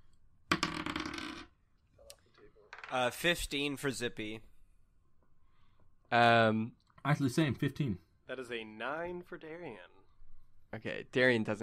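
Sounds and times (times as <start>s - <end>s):
dice rolling on a table in a tabletop game: 0.5s - 1.6s, 2.7s - 3.0s
speech: 2.9s - 4.5s, 6.1s - 10.0s, 10.7s - 11.6s.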